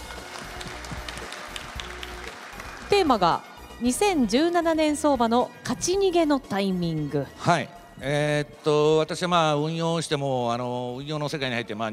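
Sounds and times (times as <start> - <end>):
audience applause welcoming a guest onto a stage: 0.0 - 3.6
speech: 3.0 - 11.9.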